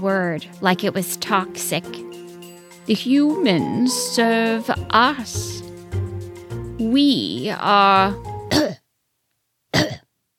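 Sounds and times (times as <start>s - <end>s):
speech: 0.0s - 2.2s, 2.9s - 5.6s, 6.8s - 8.3s
cat coughing up a hairball into a porcelain cup: 8.5s - 8.8s, 9.7s - 10.1s.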